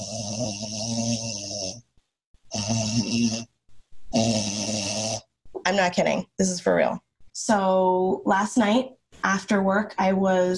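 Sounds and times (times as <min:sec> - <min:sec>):
speech: 0:00.0 - 0:01.3, 0:02.7 - 0:03.5, 0:05.7 - 0:10.5
voice imitating snoring in raspy bursts: 0:00.0 - 0:01.9, 0:02.5 - 0:05.6.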